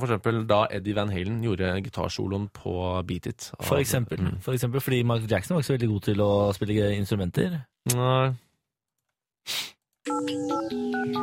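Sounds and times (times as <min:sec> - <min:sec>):
speech: 0:00.0 - 0:08.4, 0:09.4 - 0:11.2
short hiss of noise: 0:09.5 - 0:09.8
phone electronic ringtone playing a stepping melody of bright tones: 0:10.1 - 0:11.2.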